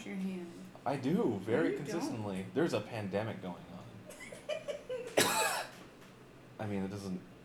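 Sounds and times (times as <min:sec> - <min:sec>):
speech: 0:00.0 - 0:03.8, 0:06.6 - 0:07.3
person coughing: 0:05.2 - 0:05.8.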